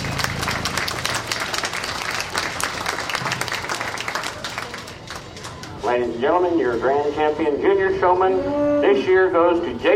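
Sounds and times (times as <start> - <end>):
crowd applauding young contestants: 0.0 - 5.8
murmur of voices: 3.0 - 9.9
speech: 5.9 - 9.9.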